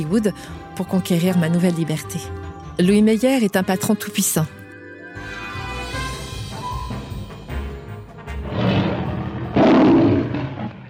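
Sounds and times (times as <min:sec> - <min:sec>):
speech: 0:00.0 - 0:04.6
orchestral fanfare of a film studio logo intro: 0:05.0 - 0:09.0
lion roaring: 0:08.4 - 0:10.8.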